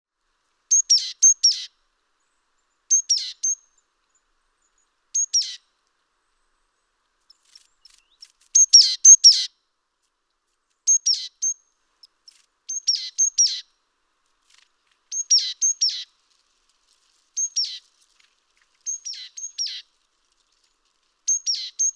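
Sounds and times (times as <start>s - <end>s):
great tit Parus major calls: 0.7s - 1.7s, 2.9s - 3.6s, 5.2s - 5.6s, 7.3s - 9.5s, 10.9s - 13.7s, 14.5s - 16.1s, 18.8s - 19.8s, 21.3s - 21.9s.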